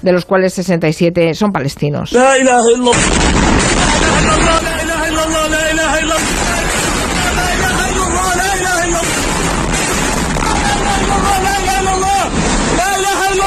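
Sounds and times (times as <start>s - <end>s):
speech: 0.0s - 4.8s
frantic voices shouting and crying out: 2.1s - 13.4s
heavy explosions and bombardment rumbling across a city: 2.9s - 13.4s.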